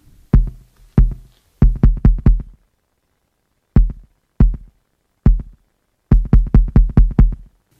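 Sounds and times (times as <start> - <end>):
808 electronic kick drum hits: 0.4 - 2.6, 3.8 - 4.7, 5.3 - 7.5.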